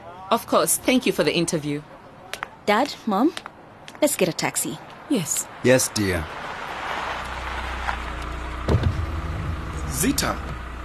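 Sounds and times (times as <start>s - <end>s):
speech: 0.3s - 2.0s, 2.6s - 6.4s, 10.0s - 10.5s
car engine rumbling as the car pulls up: 5.0s - 10.8s.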